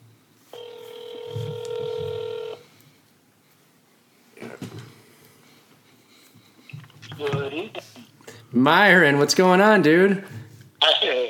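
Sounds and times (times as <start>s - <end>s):
electronic phone ringback tone: 0.5s - 2.6s
speech: 7.2s - 7.9s, 8.5s - 10.4s.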